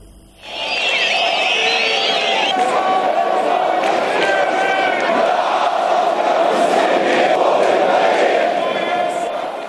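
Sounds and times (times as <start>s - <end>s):
whistles: 0.4s - 3.2s
large protest crowd shouting and chanting at a march: 0.4s - 9.6s.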